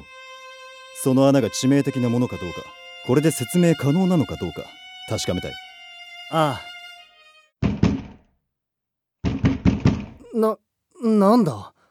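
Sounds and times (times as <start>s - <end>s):
speech: 1.0s - 5.6s, 6.3s - 6.7s, 10.4s - 11.8s
door banging open hard: 9.3s - 10.2s.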